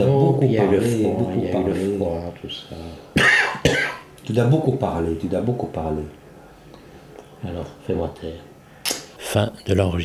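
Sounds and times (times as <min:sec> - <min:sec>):
speech: 0:00.0 - 0:06.2, 0:07.4 - 0:08.5, 0:09.3 - 0:10.0
harsh coughs: 0:03.2 - 0:04.1.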